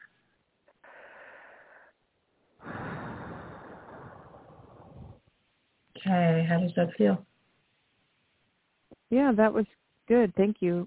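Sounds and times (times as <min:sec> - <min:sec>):
deep breath drawn in during a guided release exercise: 0:00.8 - 0:02.0, 0:02.6 - 0:05.2
speech: 0:06.0 - 0:07.3, 0:09.1 - 0:10.8.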